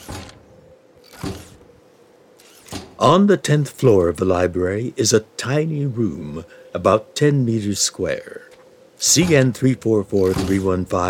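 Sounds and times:
old robot trundling on antiquated treads with grinding gears: 1.0s - 1.7s, 2.4s - 3.0s, 10.2s - 10.8s
speech: 3.0s - 11.0s.

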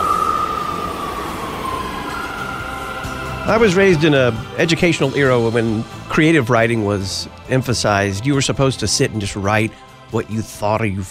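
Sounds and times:
New York City subway train roaring: 0.0s - 7.2s
speech: 3.4s - 11.0s.

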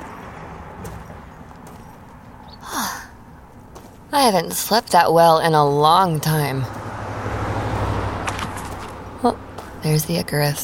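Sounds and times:
car engine humming low and steady: 0.0s - 10.6s
crunching clicks as vehicle pulls in: 0.0s - 10.6s
speech: 4.1s - 6.8s, 9.2s - 10.6s.

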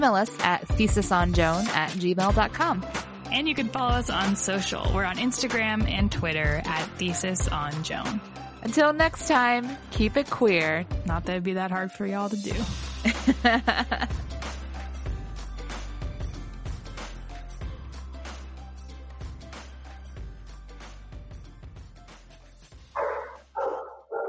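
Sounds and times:
speech: 0.0s - 14.2s
laughter: 13.0s - 14.1s
dogs barking: 23.0s - 24.2s.

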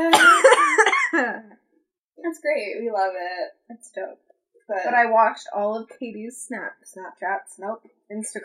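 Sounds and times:
person coughing wheezily during an asthma flare-up: 0.1s - 1.3s
speech: 2.4s - 8.4s.

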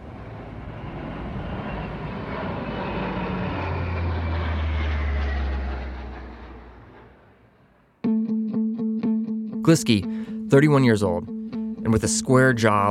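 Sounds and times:
low-flying twin-engine propeller plane roaring overhead: 0.0s - 8.0s
short bright musical tone: 8.0s - 12.8s
speech: 9.6s - 12.8s.

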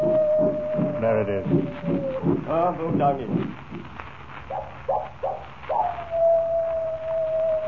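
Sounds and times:
coyote yipping and howling: 0.0s - 2.4s, 4.5s - 7.6s
faint hiss: 0.0s - 7.6s
speech: 2.5s - 3.6s.

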